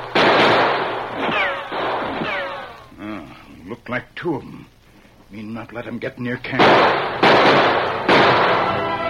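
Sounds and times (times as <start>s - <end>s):
warning gunshots fired toward a man: 0.0s - 2.8s, 6.6s - 9.0s
whining, falling ricochet tails: 1.1s - 2.9s
speech: 3.9s - 7.8s.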